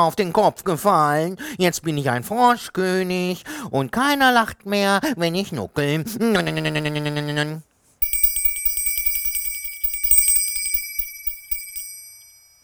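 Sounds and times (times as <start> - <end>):
speech: 0.0 - 7.7
small bell ringing: 8.0 - 12.6.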